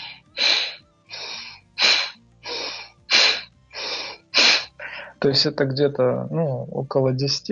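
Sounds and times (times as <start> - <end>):
sharp forceful breaths in a yogic breathing exercise with bandhas: 0.0 - 5.2
speech: 5.2 - 7.5.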